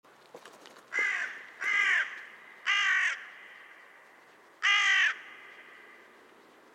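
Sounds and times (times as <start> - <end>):
carrion crow Corvus corone cawing: 0.9 - 6.1.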